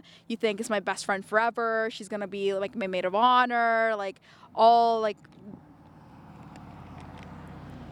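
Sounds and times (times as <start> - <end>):
speech: 0.0 - 5.6
big Porsche sports car driving by with deep engine growl: 5.2 - 7.8.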